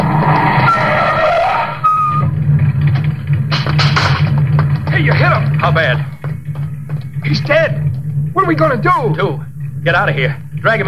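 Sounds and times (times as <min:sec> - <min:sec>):
car tires skidding and squealing turning a city street corner: 0:00.0 - 0:02.9
car engine rumble: 0:00.0 - 0:10.8
rough scraping bursts as the vehicle swerves: 0:00.0 - 0:10.8
speech: 0:08.5 - 0:10.8.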